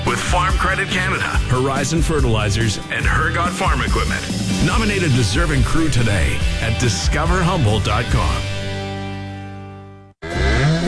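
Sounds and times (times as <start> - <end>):
speech: 0.1 - 8.5
cow mooing: 10.2 - 10.8.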